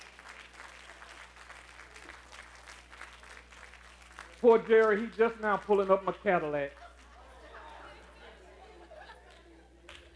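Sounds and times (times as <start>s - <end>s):
audience applause: 0.0s - 8.1s
speech: 4.4s - 6.8s
laughter: 6.7s - 10.1s.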